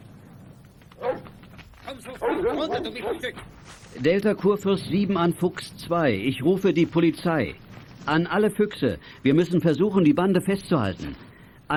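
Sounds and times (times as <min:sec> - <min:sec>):
dog barking and yelping near a camper van: 0:01.0 - 0:01.4, 0:02.2 - 0:03.4
speech: 0:01.9 - 0:11.7.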